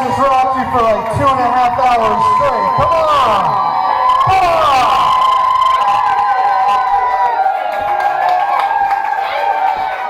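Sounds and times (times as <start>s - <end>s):
large crowd at a music concert cheering and screaming: 0.0s - 10.0s
speech: 0.1s - 4.9s.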